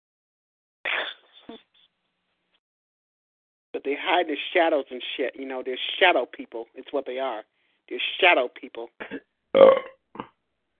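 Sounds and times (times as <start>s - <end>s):
speech: 3.8s - 10.3s
person burping: 9.0s - 10.4s.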